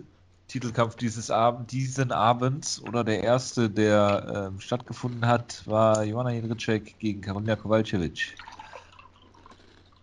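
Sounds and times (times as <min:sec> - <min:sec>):
speech: 0:00.0 - 0:08.6
iced tea being poured into a glass: 0:08.2 - 0:10.0.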